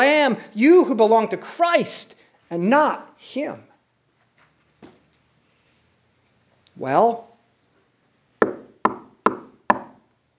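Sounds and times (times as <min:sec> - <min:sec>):
speech: 0:00.0 - 0:03.7, 0:06.8 - 0:07.3
firm knocks on a wooden door: 0:08.4 - 0:10.0.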